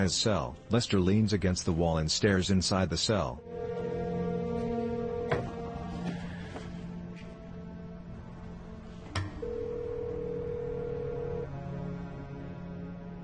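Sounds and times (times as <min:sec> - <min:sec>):
speech: 0:00.0 - 0:03.8
phone ringing with incoming call: 0:03.5 - 0:05.8, 0:09.4 - 0:11.5.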